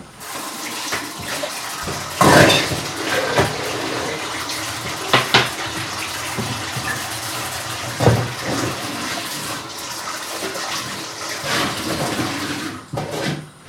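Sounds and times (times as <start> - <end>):
hot cooking water drained off boiled broccoli through a colander: 0.1 - 12.9.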